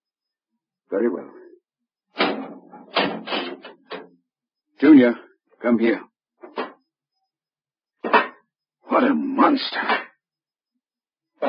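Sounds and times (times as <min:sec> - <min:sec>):
speech: 0:00.9 - 0:01.4, 0:04.8 - 0:06.1, 0:09.0 - 0:10.0
heavy door being opened with clunks and scraping: 0:02.1 - 0:04.1.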